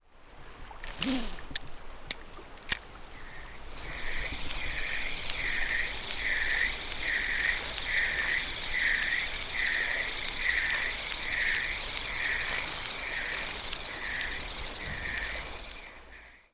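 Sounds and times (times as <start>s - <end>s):
fishing rod casting: 0.8s - 16.3s.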